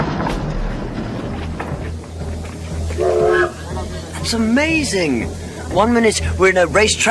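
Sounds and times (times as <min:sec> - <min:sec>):
train idling at a station with low rumble and hiss: 0:00.0 - 0:07.0
brief tonal horn-like blast: 0:02.9 - 0:03.6
speech: 0:04.3 - 0:07.0.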